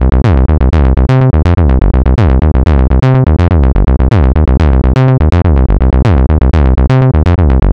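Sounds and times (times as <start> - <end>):
303 acid bassline: 0.0 - 7.7.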